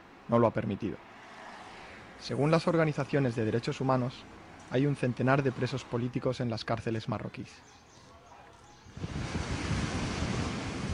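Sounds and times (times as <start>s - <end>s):
speech: 0.3s - 1.1s, 2.2s - 7.9s
waves breaking on the coast outside El Aaiún: 9.0s - 10.9s.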